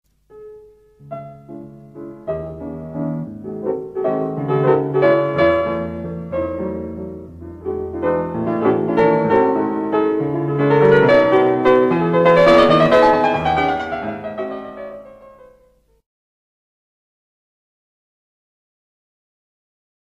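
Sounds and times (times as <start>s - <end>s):
classical piano piece: 0.1s - 16.0s.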